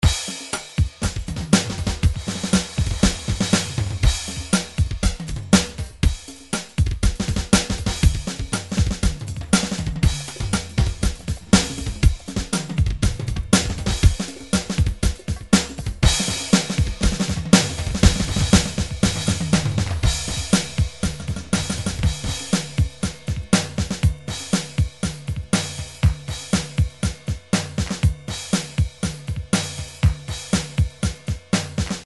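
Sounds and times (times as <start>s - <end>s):
ballad drum groove: 0.0s - 32.0s.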